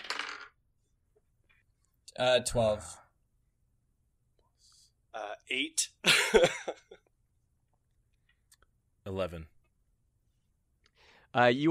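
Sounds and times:
dice clattering across a hard table in a tabletop game: 0.0 - 0.6
speech: 2.2 - 3.0, 5.5 - 7.1, 9.0 - 9.5, 11.3 - 11.6.

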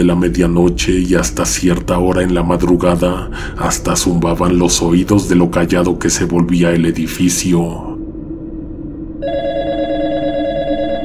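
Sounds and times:
speech: 0.0 - 7.9
low hum: 0.0 - 11.0
telephone with a steady electronic ring: 9.2 - 11.0.

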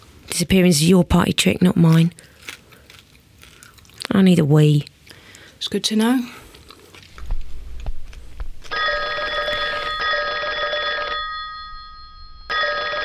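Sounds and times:
speech: 0.4 - 2.3, 4.2 - 4.9, 5.6 - 6.4
telephone ringing with a sustained electronic trill: 8.7 - 13.0.

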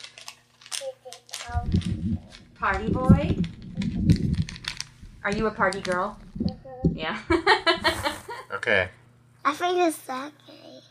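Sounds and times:
plastic minifigure blind bag crinkling as it is opened with scissors: 0.0 - 6.6
faint steady hum: 0.0 - 10.8
speech: 1.1 - 4.5, 5.2 - 8.0, 8.7 - 10.5.

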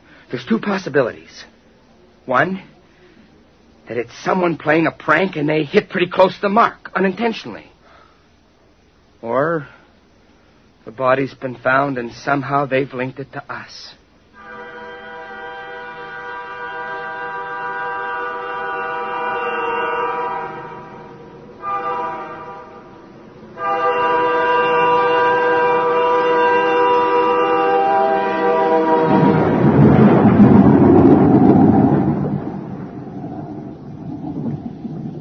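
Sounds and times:
speech: 0.3 - 1.6, 2.3 - 2.7, 3.9 - 7.7, 9.2 - 9.8, 10.9 - 14.0
sustained wailing tonal drone: 14.4 - 35.1
deep loud roll of rumbling thunder: 28.5 - 35.1.

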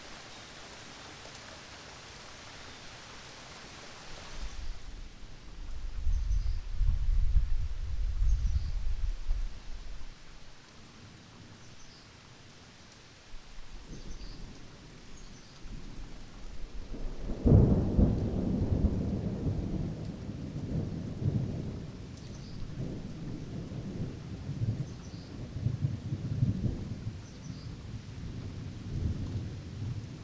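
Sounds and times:
gentle rain in a mild storm: 0.0 - 30.2
thunder rumbling low: 5.5 - 10.0, 15.8 - 27.2.

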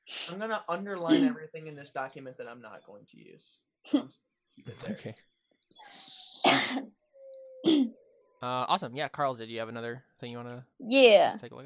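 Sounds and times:
speech: 0.3 - 5.9, 8.4 - 11.6
loud harsh raspy coughing: 1.1 - 1.4, 4.7 - 5.1, 6.4 - 6.9.

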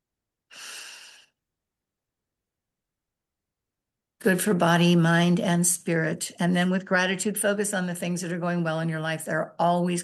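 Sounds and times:
deep breath in and out: 0.5 - 1.4
speech: 4.2 - 10.0.

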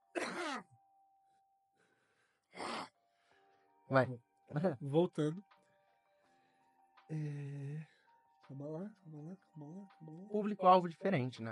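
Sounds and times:
person coughing: 0.1 - 0.7
speech: 0.5 - 0.7, 3.9 - 5.5, 7.1 - 7.9, 8.5 - 11.5.

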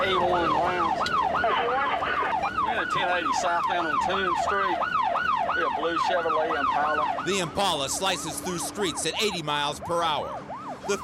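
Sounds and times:
speech: 0.0 - 1.8, 2.7 - 11.0
police car sirens wailing: 0.0 - 11.0.

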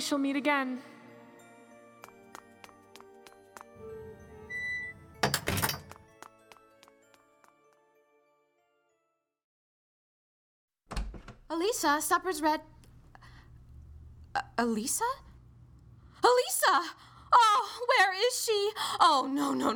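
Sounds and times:
speech: 0.0 - 1.0, 11.6 - 12.8, 14.6 - 15.3, 16.2 - 19.7
side door opening with a low rumbling slide: 4.0 - 6.0
side door shutting with a heavy thud: 5.1 - 6.0, 10.9 - 11.5.

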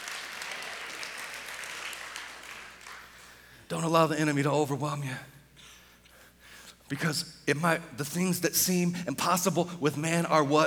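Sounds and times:
congregation clapping: 0.0 - 3.3
speech: 3.7 - 5.4, 6.9 - 10.6.

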